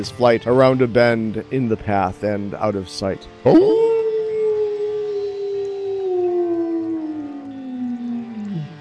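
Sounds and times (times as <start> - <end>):
speech: 0.0 - 3.9
wolf howling: 3.5 - 8.8.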